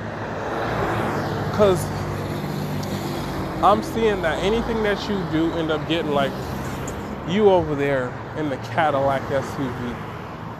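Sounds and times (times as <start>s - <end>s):
road traffic rumble passing a bus stop: 0.0s - 10.5s
vehicles droning past: 0.0s - 10.5s
speech: 1.6s - 2.0s, 3.6s - 6.6s, 7.3s - 10.1s.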